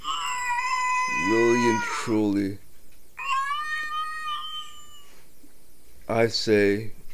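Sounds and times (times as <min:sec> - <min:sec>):
long drawn-out cat meow: 0:00.0 - 0:02.2, 0:03.2 - 0:05.2
speech: 0:01.2 - 0:02.6, 0:06.1 - 0:07.0.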